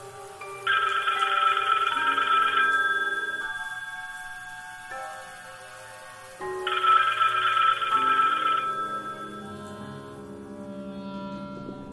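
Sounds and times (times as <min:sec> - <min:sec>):
telephone ringing with a tonal electronic melody: 0:00.6 - 0:04.6, 0:06.6 - 0:09.7.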